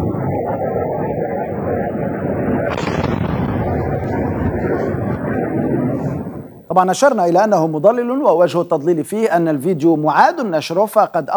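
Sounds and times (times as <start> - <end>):
loud roaring rumble of fighter jet: 0.0 - 6.7
sharp hissing burst: 2.7 - 6.7
speech: 6.8 - 11.3.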